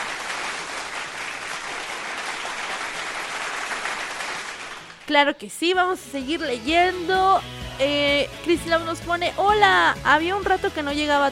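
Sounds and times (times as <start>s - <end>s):
crowd applauding: 0.0s - 5.1s
speech: 5.1s - 11.2s.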